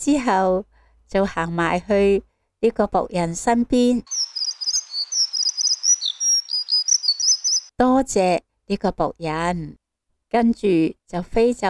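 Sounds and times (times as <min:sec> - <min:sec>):
speech: 0:00.0 - 0:04.2, 0:07.8 - 0:11.6
two small birds chirping while eating: 0:04.0 - 0:07.7.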